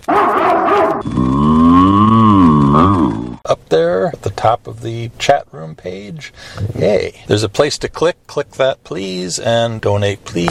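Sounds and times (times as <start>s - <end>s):
rough animal sound: 0.0s - 3.4s
cow mooing: 0.1s - 3.4s
speech: 4.4s - 10.4s.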